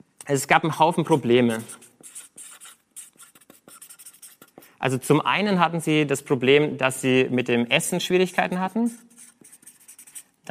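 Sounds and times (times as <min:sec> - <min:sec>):
speech: 0:00.3 - 0:01.8, 0:04.8 - 0:09.1
marker writing on flipchart paper: 0:00.7 - 0:04.8, 0:08.4 - 0:10.4.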